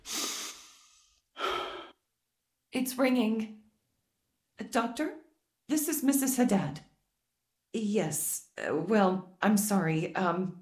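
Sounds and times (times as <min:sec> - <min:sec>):
person breathing deeply: 0:00.0 - 0:02.0
speech: 0:02.7 - 0:03.6, 0:04.7 - 0:06.9, 0:07.7 - 0:10.5.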